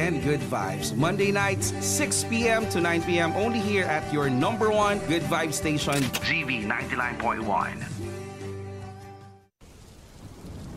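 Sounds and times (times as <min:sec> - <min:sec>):
speech: 0:00.1 - 0:07.9
rain falling: 0:09.6 - 0:10.7.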